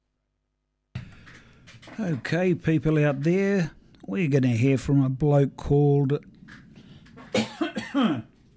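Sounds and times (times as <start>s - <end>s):
speech: 1.9s - 6.6s, 8.0s - 8.3s
harsh throaty coughs with a rasping edge: 7.2s - 8.4s.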